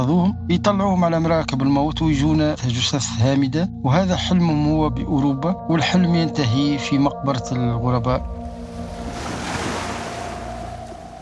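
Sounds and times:
speech: 0:00.0 - 0:08.4
wind: 0:08.2 - 0:11.2
Mediterranean Sea waves surging off Tunisia: 0:08.4 - 0:11.2.

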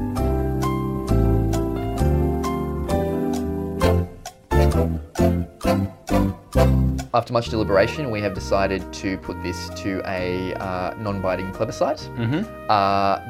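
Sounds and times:
light instrumental thinking-music tune: 0:00.0 - 0:13.2
speech: 0:07.1 - 0:13.2.

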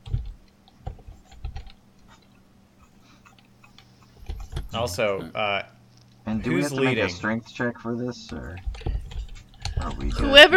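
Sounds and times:
typing on a computer keyboard during an online tabletop role-playing game: 0:00.0 - 0:01.8, 0:08.6 - 0:10.0
speech: 0:04.7 - 0:05.7, 0:06.3 - 0:08.7, 0:09.8 - 0:10.5.

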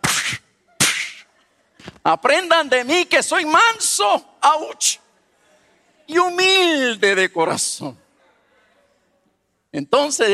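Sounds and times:
loud sharp slaps: 0:00.0 - 0:02.0
speech: 0:01.8 - 0:05.0, 0:06.1 - 0:08.0, 0:09.7 - 0:10.3.

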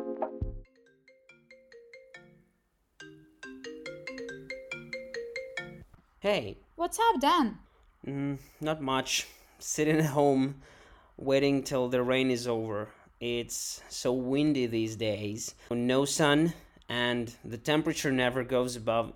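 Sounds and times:
telephone ringtone electronic melody: 0:00.7 - 0:05.9
speech: 0:06.2 - 0:19.1.

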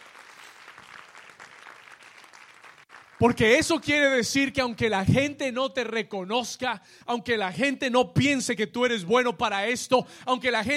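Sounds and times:
crowd applauding: 0:00.0 - 0:03.8
speech: 0:03.2 - 0:10.7.

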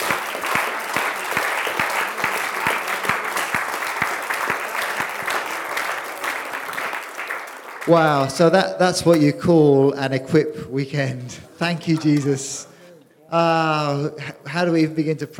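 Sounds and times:
large crowd clapping enthusiastically: 0:00.0 - 0:09.2
speech: 0:07.9 - 0:12.7, 0:13.3 - 0:15.3.

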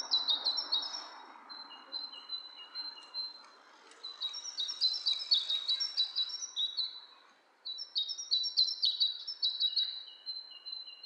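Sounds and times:
two birds chirping: 0:00.0 - 0:11.0.

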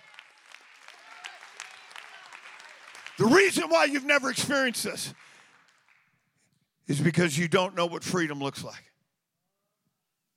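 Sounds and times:
congregation clapping hands: 0:00.0 - 0:07.4
speech: 0:03.2 - 0:05.3, 0:06.9 - 0:08.9.

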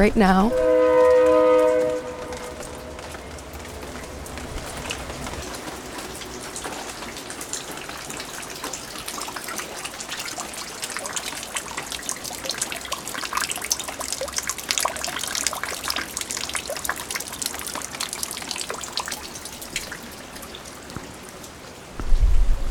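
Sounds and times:
speech: 0:00.0 - 0:00.7
heavy rain during a 100-year rain event: 0:00.3 - 0:22.6
low rumble: 0:22.0 - 0:22.6.

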